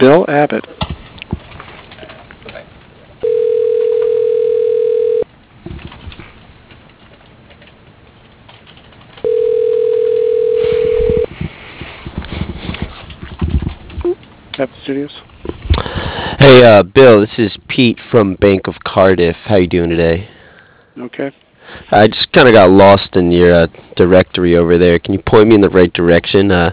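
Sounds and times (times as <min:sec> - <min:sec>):
speech: 0:00.0 - 0:00.8, 0:14.9 - 0:15.2, 0:16.5 - 0:20.4, 0:21.0 - 0:26.7
telephone ringback tone on a call being placed: 0:03.2 - 0:05.3, 0:09.2 - 0:11.3.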